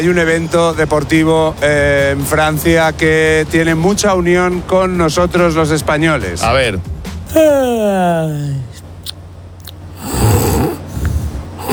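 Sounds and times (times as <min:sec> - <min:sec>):
speech: 0:00.0 - 0:08.7
snoring: 0:10.0 - 0:11.7.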